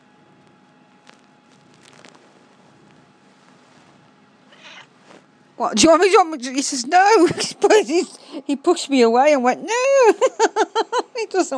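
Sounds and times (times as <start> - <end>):
male cat purring on top of a printer indoors: 0.2 - 5.6
soft rustling bumps from handling: 0.3 - 7.8
speech: 5.6 - 10.6, 11.2 - 11.5
laughter: 9.8 - 11.5.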